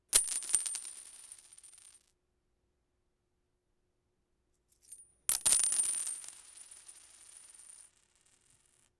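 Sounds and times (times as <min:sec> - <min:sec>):
coins dropping to concrete: 0:00.2 - 0:02.1, 0:04.8 - 0:08.9.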